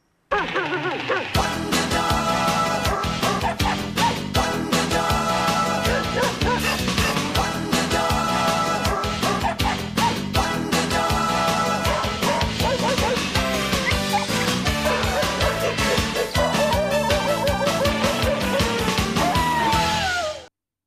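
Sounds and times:
bouncy TV theme song played by a full band: 0.4s - 20.5s
playful dog barks and yips woven into the music: 5.9s - 6.6s, 11.9s - 18.8s.

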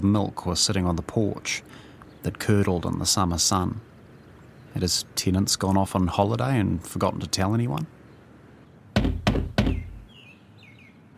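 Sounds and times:
speech: 0.0s - 3.9s, 4.7s - 8.0s
knocking on the wooden front door of a tenants' house: 9.0s - 10.1s.

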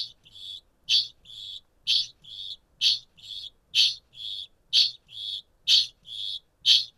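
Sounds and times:
kakapo metallic chinging call: 0.0s - 6.9s.

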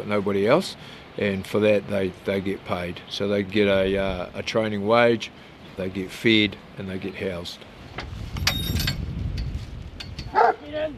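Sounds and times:
speech: 0.0s - 8.8s, 10.7s - 10.9s
steady low rumble of open-air noise: 1.2s - 10.9s
farm working dogs barking outdoors in a paddock: 10.3s - 10.7s.

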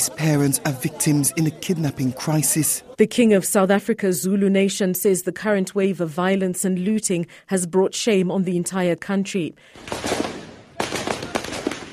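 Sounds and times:
speech: 0.2s - 10.3s
gunfire volleys in Mogadishu Somalia: 9.8s - 11.9s.

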